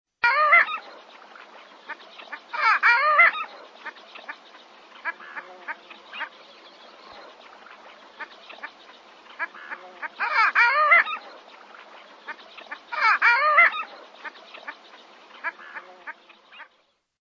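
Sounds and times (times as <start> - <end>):
long-tailed duck calling: 1.9 - 4.3, 5.0 - 6.3, 9.4 - 11.4, 12.3 - 14.8, 15.4 - 16.7.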